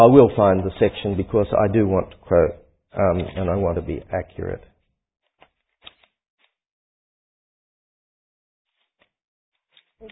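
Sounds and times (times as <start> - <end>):
speech: 0.0 - 4.7
papers being shuffled and handled: 3.0 - 3.8, 5.2 - 6.6, 8.7 - 10.1.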